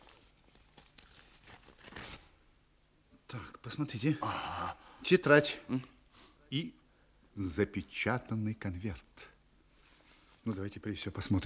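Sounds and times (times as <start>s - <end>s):
paper packet being torn open: 0.0s - 2.3s
speech: 3.3s - 6.8s, 7.4s - 9.3s, 10.4s - 11.4s.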